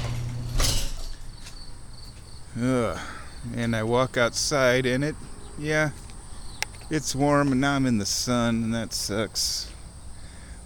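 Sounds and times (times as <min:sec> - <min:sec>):
squeaky garage door opening with creaking grinding mechanical scrape: 0:00.0 - 0:01.2
speech: 0:02.6 - 0:06.0, 0:06.9 - 0:09.7.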